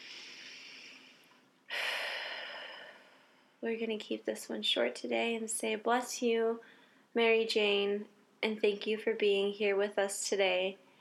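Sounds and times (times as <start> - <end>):
deep breath taken before a group blessing: 0.0 - 3.6, 6.6 - 7.1
speech: 3.6 - 10.8.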